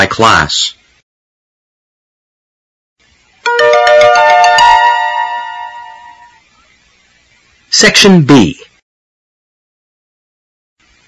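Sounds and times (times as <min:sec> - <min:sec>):
speech: 0:00.2 - 0:00.8, 0:07.7 - 0:08.7
electronic school bell ringing: 0:03.5 - 0:06.4.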